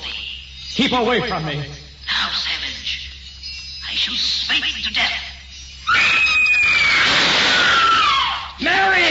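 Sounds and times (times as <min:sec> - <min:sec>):
speech: 0:00.8 - 0:02.4, 0:04.0 - 0:05.3, 0:05.9 - 0:07.1
piercing high-pitched scream: 0:05.8 - 0:09.0.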